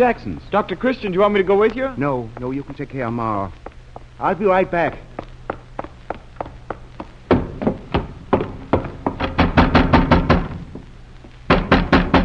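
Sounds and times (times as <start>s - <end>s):
speech: 0.0s - 5.1s
insistent knocking on a door: 7.3s - 10.8s, 11.5s - 12.2s.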